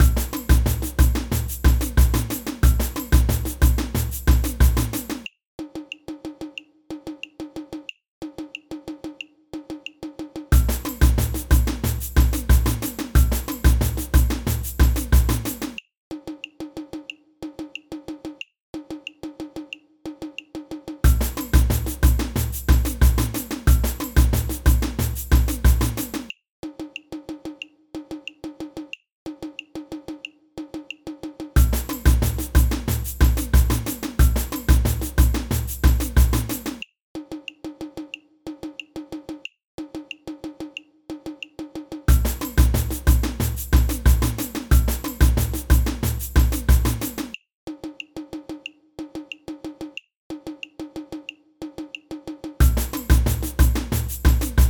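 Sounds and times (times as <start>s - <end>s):
samba band playing: 0.0s - 5.2s, 10.5s - 15.5s, 21.0s - 26.2s, 31.6s - 36.8s, 42.1s - 47.3s, 52.6s - 54.6s.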